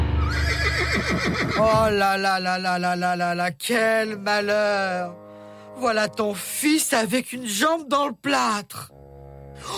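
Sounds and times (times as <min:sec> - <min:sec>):
agitated horse neighing loudly: 0:00.2 - 0:01.9
speech: 0:01.2 - 0:05.2, 0:05.8 - 0:09.0.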